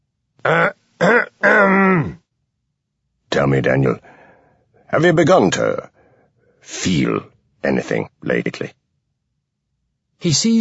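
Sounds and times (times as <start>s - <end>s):
speech: 0.4s - 0.8s, 3.5s - 4.1s, 4.9s - 5.9s, 6.6s - 8.8s, 10.2s - 10.5s
man's gruff voiced cough: 0.5s - 2.2s.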